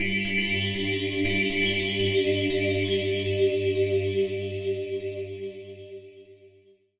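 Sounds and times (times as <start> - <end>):
synthesizer: 0.0 - 6.3.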